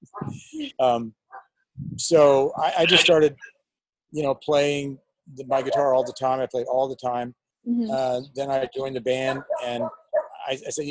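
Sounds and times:
speech: 0:00.2 - 0:01.2, 0:01.8 - 0:03.5, 0:04.1 - 0:10.8
dogs barking and yelping: 0:05.6 - 0:06.4, 0:09.1 - 0:10.5.

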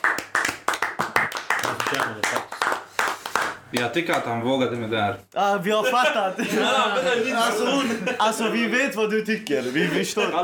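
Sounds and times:
people clapping hands in applause: 0:00.0 - 0:04.4
speech: 0:01.9 - 0:02.6, 0:03.7 - 0:10.4
laughter: 0:05.9 - 0:08.9, 0:09.7 - 0:10.4.

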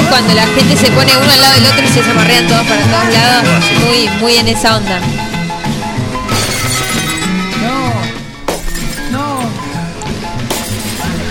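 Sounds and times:
speech: 0:00.2 - 0:05.2
dense steady tonal sound: 0:00.2 - 0:07.5
window glass panes shattering: 0:06.1 - 0:07.6, 0:08.5 - 0:09.5, 0:10.4 - 0:11.2.

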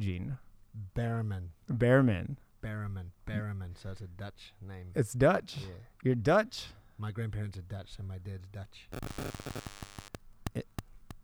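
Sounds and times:
speech: 0:00.0 - 0:10.7
electronic static bursts from a phone on audio cords: 0:08.9 - 0:11.2.

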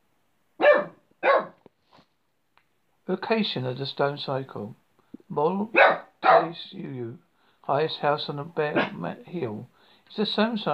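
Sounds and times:
dog barking: 0:00.6 - 0:01.6, 0:05.7 - 0:06.6, 0:08.8 - 0:09.0
speech: 0:03.1 - 0:10.7.

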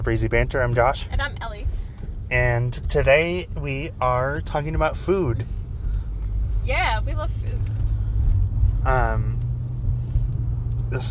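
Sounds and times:
speech: 0:00.0 - 0:05.6, 0:06.6 - 0:07.7, 0:08.8 - 0:09.3
steady low engine and road rumble from inside a moving car: 0:00.0 - 0:11.0.

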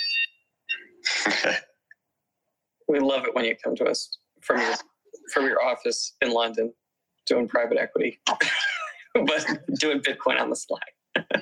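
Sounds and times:
office fire alarm electronic beeps: 0:00.0 - 0:01.0
speech: 0:01.4 - 0:01.7, 0:02.9 - 0:11.4.

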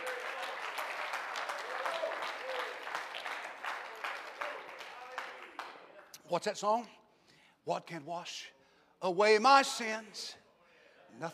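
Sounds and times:
audience applause in a reverberant room: 0:00.0 - 0:06.0
speech: 0:06.3 - 0:07.0, 0:07.6 - 0:10.4, 0:11.1 - 0:11.3.

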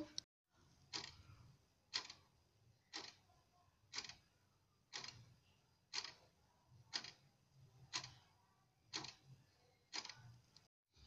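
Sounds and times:
clock ticking: 0:00.9 - 0:01.2, 0:01.9 - 0:04.3, 0:04.9 - 0:05.3, 0:05.9 - 0:06.3, 0:06.9 - 0:07.3, 0:07.9 - 0:08.2, 0:08.9 - 0:10.7.

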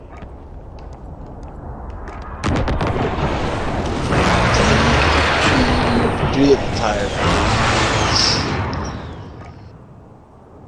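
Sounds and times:
continuous rumbling roar: 0:00.0 - 0:10.6
precision airstrike explosions in a video game: 0:01.6 - 0:09.7
speech: 0:06.4 - 0:07.6.

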